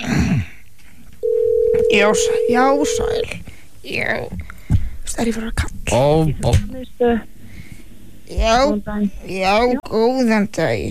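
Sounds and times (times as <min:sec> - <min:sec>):
telephone ringback tone calling a sports centre: 0:01.2 - 0:03.3
speech: 0:01.9 - 0:04.5, 0:05.2 - 0:07.3, 0:08.3 - 0:10.9.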